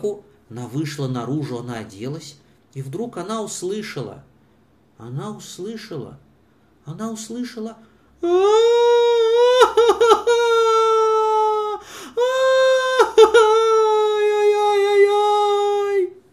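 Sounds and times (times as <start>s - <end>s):
speech: 0.0s - 4.3s, 5.0s - 6.2s, 6.8s - 8.8s
big boy crying: 8.2s - 16.2s.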